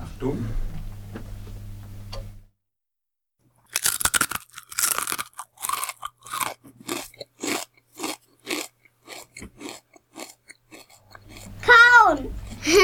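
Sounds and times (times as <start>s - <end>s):
speech: 0.2s - 0.7s
crunchy chewing of something crisp: 3.6s - 12.8s.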